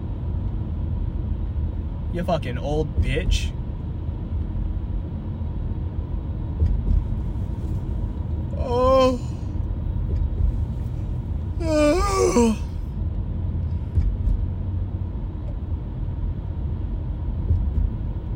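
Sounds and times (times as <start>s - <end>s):
engine rumble of a moving car: 0.0s - 18.3s
speech: 2.1s - 3.6s, 8.6s - 9.3s, 11.7s - 12.6s
person yawning: 8.6s - 9.5s, 11.6s - 12.8s.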